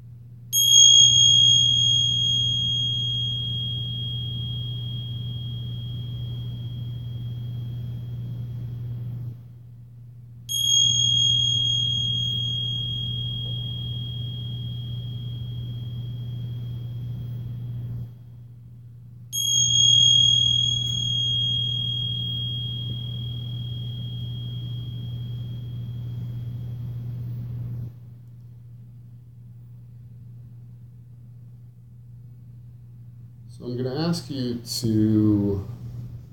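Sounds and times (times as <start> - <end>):
steady low hum: 0.2 - 36.3
meditation bell ringing: 0.5 - 9.4, 10.5 - 18.2, 19.3 - 28.0
speech: 33.6 - 35.8.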